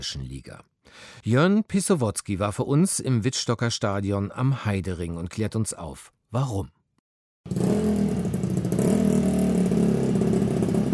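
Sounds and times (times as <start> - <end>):
speech: 0.0 - 6.8, 7.4 - 8.3
speedway racing motorcycle engine warming up in the pit box: 7.5 - 10.9.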